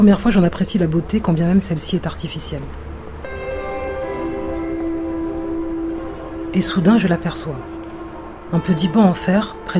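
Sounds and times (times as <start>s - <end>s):
speech: 0.0s - 2.9s, 6.5s - 7.7s, 8.5s - 9.7s
RER commuter train passing: 1.8s - 9.7s.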